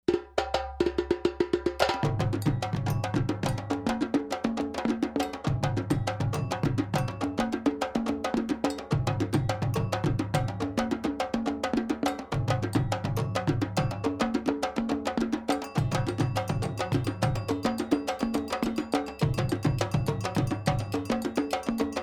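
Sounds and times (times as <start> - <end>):
djembe ensemble: 0.0 - 22.0.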